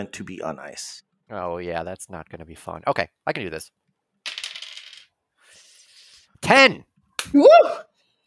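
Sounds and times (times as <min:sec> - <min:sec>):
speech: 0:00.0 - 0:03.8, 0:06.4 - 0:08.2
blue dice rolling across a hard tabletop for a role-playing game check: 0:04.2 - 0:05.1.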